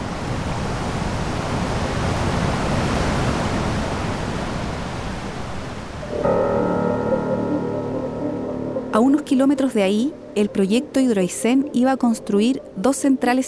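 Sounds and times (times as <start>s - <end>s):
powerful rushing water at river confluence: 0.0s - 6.6s
sustained musical tones: 6.0s - 13.4s
speech: 9.0s - 13.4s.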